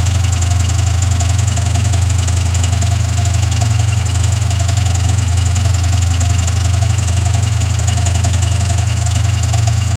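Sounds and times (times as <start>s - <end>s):
diesel engine: 0.0s - 9.9s.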